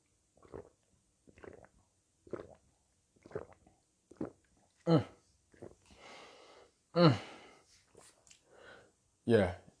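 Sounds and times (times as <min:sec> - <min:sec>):
short soft gulping sips of water: 0:00.0 - 0:06.6
speech: 0:04.9 - 0:05.1, 0:07.0 - 0:07.3, 0:09.3 - 0:09.6
breathy exhalations after drinking: 0:05.8 - 0:07.8, 0:08.4 - 0:08.9.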